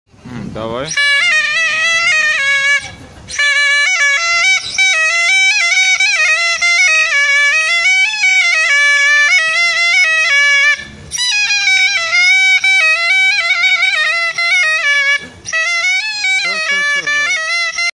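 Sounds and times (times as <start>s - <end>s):
zurna: 0.3s - 17.9s.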